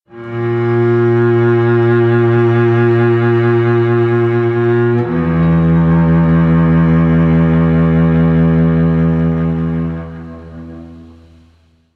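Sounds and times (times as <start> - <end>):
double bass: 0.0 - 11.9.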